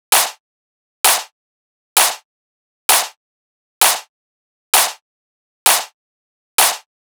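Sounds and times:
techno clap loop: 0.1s - 0.4s, 1.0s - 1.3s, 2.0s - 2.2s, 2.9s - 3.2s, 3.8s - 4.1s, 4.8s - 5.0s, 5.7s - 6.0s, 6.6s - 6.9s.

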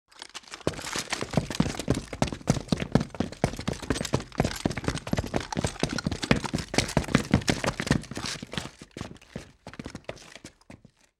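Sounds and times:
militia gear movement: 0.1s - 8.5s
footsteps of a militia group running: 0.4s - 11.1s.

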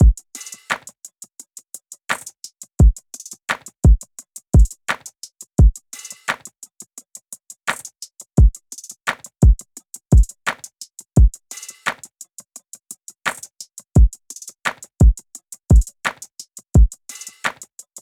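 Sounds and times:
drum loop: 0.0s - 0.9s, 2.1s - 4.0s, 4.6s - 6.4s, 7.7s - 10.6s, 13.3s - 17.6s.

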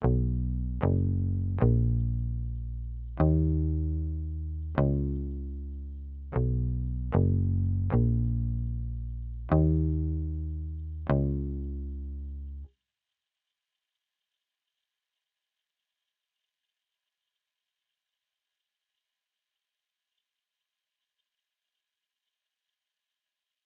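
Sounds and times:
bass guitar loop in D sharp minor at 152 BPM: 0.0s - 12.7s.

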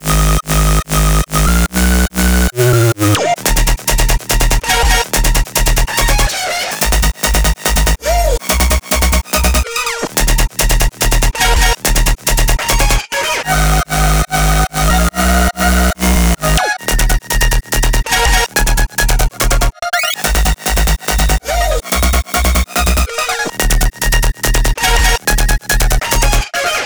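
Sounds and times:
melody loop at 143 BPM in D sharp minor: 0.0s - 11.4s, 12.3s - 26.2s.

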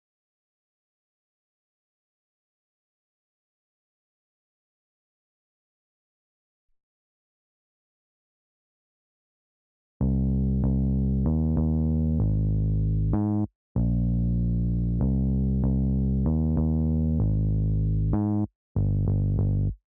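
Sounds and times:
C minor bass line: 10.0s - 19.8s.

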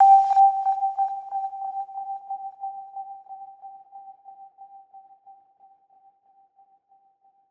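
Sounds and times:
sonar sound effect: 0.0s - 1.9s.

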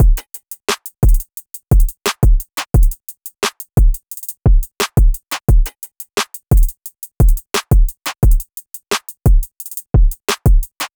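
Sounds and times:
drum loop at 175 BPM: 0.0s - 10.9s.

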